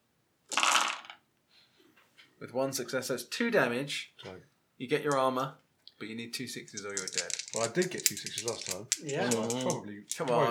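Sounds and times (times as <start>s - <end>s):
nine dice rolled in a tabletop game clattering: 0.5s - 1.2s, 5.1s - 5.3s, 6.6s - 10.4s
speech: 2.4s - 10.4s.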